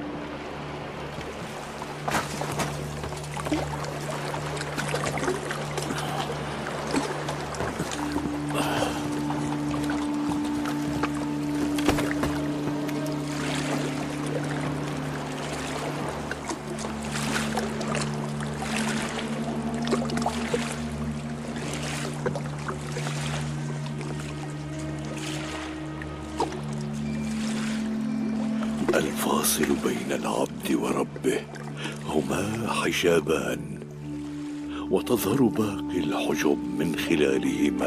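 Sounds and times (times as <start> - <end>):
steady sloshing of rowboats moving through water: 0.0 - 37.8
splashes of rowboats moving through water: 0.8 - 30.2
rowboat creaks: 1.1 - 13.9
speech: 3.5 - 3.8, 32.8 - 33.6, 35.0 - 37.8.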